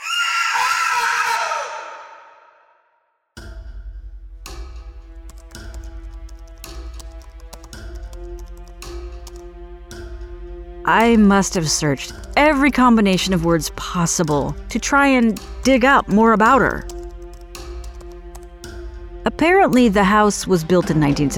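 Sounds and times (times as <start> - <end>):
woman screaming: 0.0 - 2.4
steady ticks: 3.4 - 21.3
speech: 10.9 - 16.9, 19.3 - 21.3.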